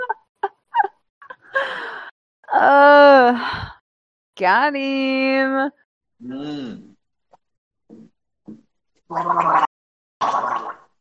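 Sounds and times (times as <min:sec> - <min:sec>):
speech: 0:02.6 - 0:03.7, 0:04.4 - 0:06.9, 0:09.1 - 0:09.7
person gargling denture cleaning water: 0:06.2 - 0:06.9, 0:07.9 - 0:10.8.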